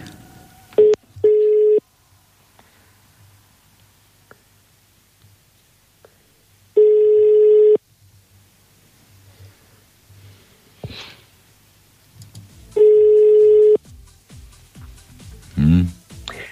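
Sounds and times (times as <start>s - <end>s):
long steady electronic telephone line ringing tones: 0.8s - 1.8s, 6.8s - 7.8s, 12.8s - 13.8s
faint breathing: 2.4s - 3.6s, 9.1s - 11.4s, 16.2s - 16.5s.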